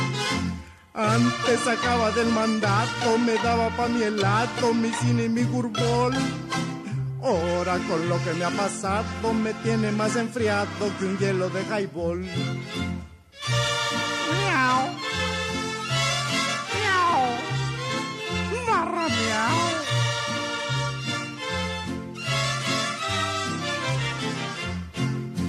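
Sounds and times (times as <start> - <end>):
instrumental music: 0.0 - 25.4
speech: 1.0 - 6.6, 7.2 - 15.4
cat meowing and caterwauling: 16.7 - 17.6.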